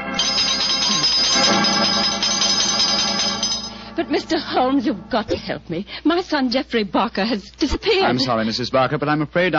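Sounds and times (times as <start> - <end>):
doorbell ringing with a metallic jangle: 0.1 - 4.0
speech: 4.1 - 9.5.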